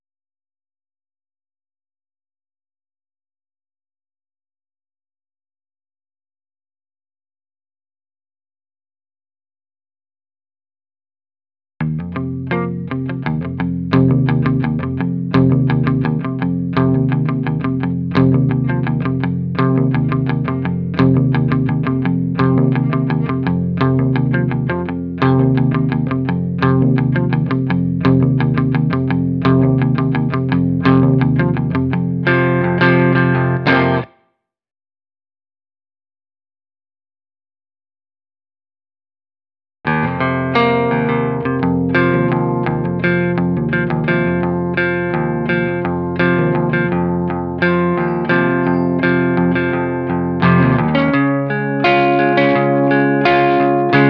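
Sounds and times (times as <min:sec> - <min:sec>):
clean guitar: 0:11.8 - 0:34.2, 0:39.9 - 0:54.0.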